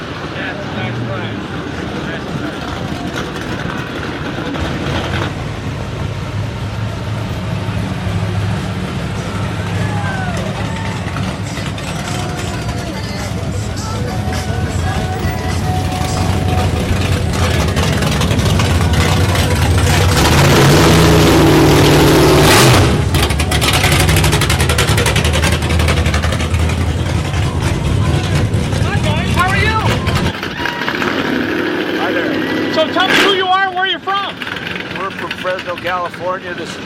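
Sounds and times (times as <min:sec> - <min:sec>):
1959 Sabre classic car engine revving and driving off at a car show cruise: 0:00.0 - 0:36.8
faint chatter at a car show cruise: 0:00.2 - 0:03.8, 0:09.1 - 0:20.2, 0:26.5 - 0:33.0.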